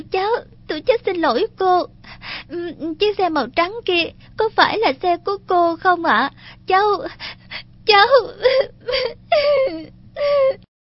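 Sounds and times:
speech: 0.0 - 7.3, 7.9 - 10.7
girl crying in whimpering wailing sobs: 2.4 - 3.0, 7.9 - 10.7.

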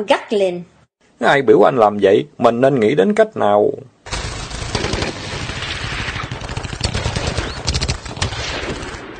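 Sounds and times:
speech: 0.0 - 4.0
loud rapid gunfire from a river bank: 4.1 - 9.1.

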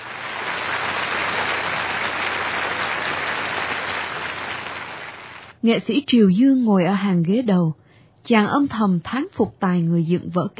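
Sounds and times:
large crowd applauding in a theater: 0.0 - 5.6
speech: 5.6 - 10.5.

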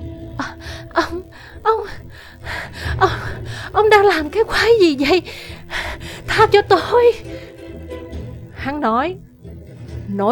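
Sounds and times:
woman sobbing and panting with ragged gasps for breath: 0.4 - 6.6
woman whimpering with shaky breaths: 0.4 - 6.6
speech: 3.8 - 5.5, 6.4 - 7.4, 8.6 - 9.3, 10.1 - 10.2.

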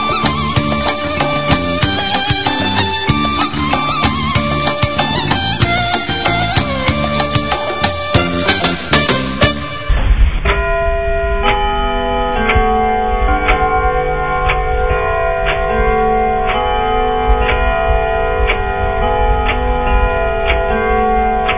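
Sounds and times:
house clock ticking: 0.0 - 9.2, 12.3 - 21.5
house clock chime: 10.5 - 21.5.

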